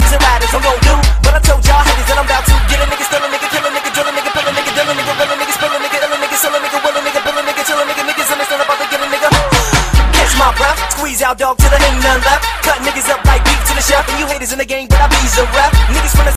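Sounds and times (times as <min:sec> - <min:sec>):
fast rap ringtone: 0:00.0 - 0:16.3.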